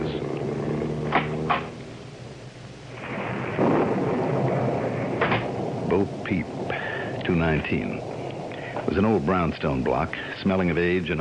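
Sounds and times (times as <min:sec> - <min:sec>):
deep roll of thunder rumbling: 0:00.0 - 0:11.1
steady rain hissing: 0:00.0 - 0:11.1
brief knocks: 0:05.2 - 0:05.5
speech: 0:06.0 - 0:06.6, 0:07.3 - 0:08.1, 0:08.8 - 0:11.1.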